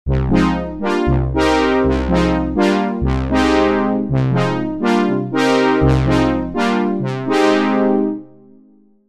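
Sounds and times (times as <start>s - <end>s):
classic Oberheim OB-X synth brass: 0.1s - 8.8s.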